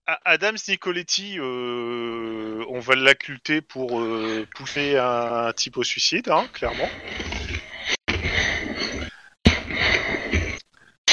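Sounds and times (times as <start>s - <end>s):
speech: 0.1s - 7.3s
heavy breathing into microphone: 6.5s - 10.6s.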